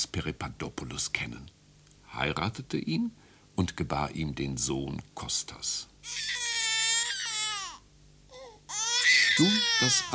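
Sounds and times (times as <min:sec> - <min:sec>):
speech: 0:00.2 - 0:06.6, 0:09.4 - 0:10.1
baby boy crying loudly: 0:06.0 - 0:10.1
faint baby whimper: 0:06.6 - 0:10.1.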